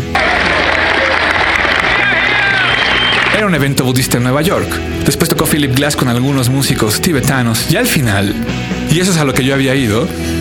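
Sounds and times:
large audience applauding: 0:00.0 - 0:03.7
speech: 0:03.4 - 0:10.3.

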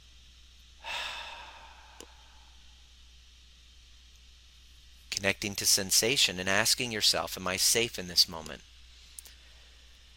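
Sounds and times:
deep breath in and exhale during a guided meditation: 0:00.8 - 0:02.8
speech: 0:05.2 - 0:08.7.

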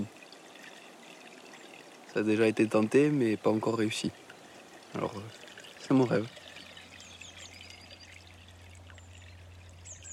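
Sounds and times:
water flowing in a stream: 0:00.0 - 0:10.1
speech: 0:02.1 - 0:04.2, 0:04.9 - 0:06.4
high bird chirps: 0:06.8 - 0:10.1.

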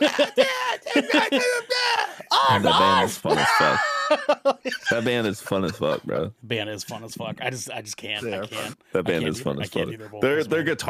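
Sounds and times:
speech: 0:00.0 - 0:00.4, 0:02.5 - 0:10.8
laughter: 0:00.0 - 0:06.2
cartoon character voice screaming and yelling: 0:00.9 - 0:04.1.

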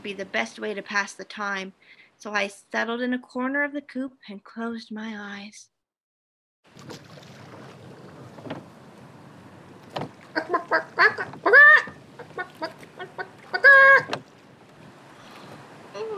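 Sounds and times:
speech: 0:00.0 - 0:05.7, 0:10.7 - 0:11.8
hen clucking and squawking after laying an egg: 0:10.2 - 0:14.2.

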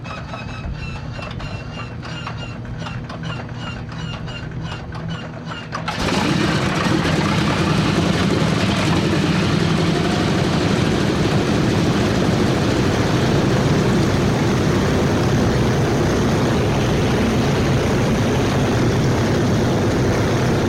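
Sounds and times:
B-29 heavy bomber propeller engines starting up: 0:00.0 - 0:20.6.

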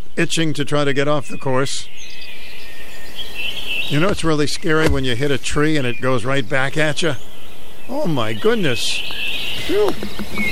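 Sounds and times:
birds singing outdoors on a golf course: 0:00.0 - 0:10.5
speech: 0:00.2 - 0:02.3, 0:03.9 - 0:07.3, 0:07.9 - 0:10.5.

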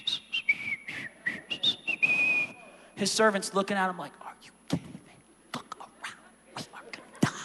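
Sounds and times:
person whistling a short lively tune: 0:00.0 - 0:02.6
speech: 0:03.0 - 0:04.8.

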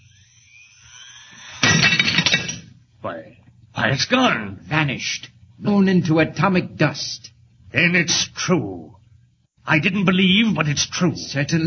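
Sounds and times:
faint hum: 0:00.0 - 0:11.6
glass shattering on the edge of a table: 0:01.5 - 0:02.7
speech: 0:03.0 - 0:09.0, 0:09.6 - 0:11.6.

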